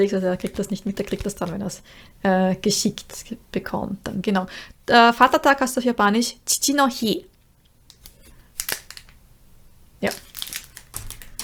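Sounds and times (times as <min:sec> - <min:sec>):
speech: 0:00.0 - 0:07.3, 0:10.0 - 0:10.2
washi paper envelope crinkling while handled: 0:07.9 - 0:09.2, 0:10.0 - 0:11.4.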